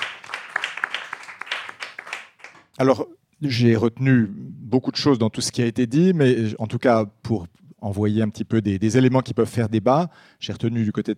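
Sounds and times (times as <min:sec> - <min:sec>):
audience applauding: 0:00.0 - 0:02.7
speech: 0:02.8 - 0:11.1.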